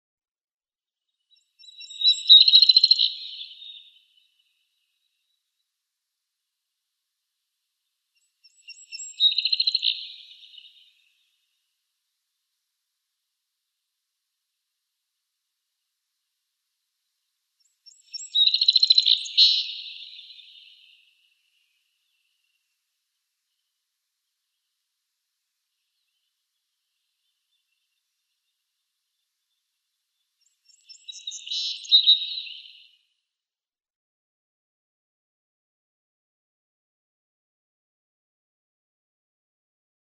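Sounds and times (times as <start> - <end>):
Song Sparrow singing: 1.3 - 4.6, 8.2 - 11.3, 17.6 - 22.6, 30.4 - 33.0.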